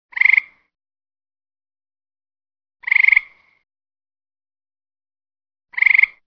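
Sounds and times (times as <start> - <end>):
tree frog calling: 0.1 - 0.7, 2.8 - 3.6, 5.7 - 6.2.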